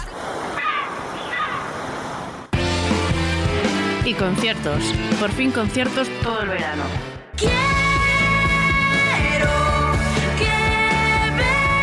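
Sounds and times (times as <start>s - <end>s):
sea waves breaking on shore: 0.0s - 5.3s
loud music: 2.6s - 11.8s
speech: 4.1s - 7.8s.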